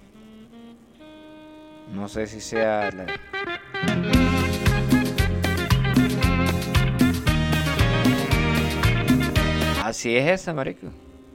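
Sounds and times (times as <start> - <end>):
speech: 1.9 - 3.9, 9.9 - 11.0
Christmas pop song with thumping beat and punchy bass: 3.8 - 9.8.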